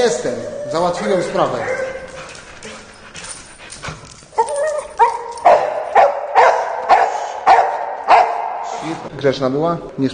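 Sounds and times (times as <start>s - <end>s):
speech: 0.0s - 1.8s, 9.2s - 10.1s
dog whimpering: 0.0s - 5.4s
dog barking loudly: 5.0s - 8.8s.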